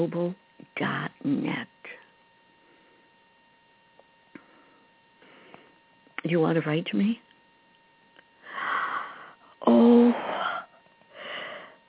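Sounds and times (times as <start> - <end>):
speech: 0.0 - 1.7, 6.3 - 7.2, 9.6 - 10.5
person yawning: 8.7 - 10.8.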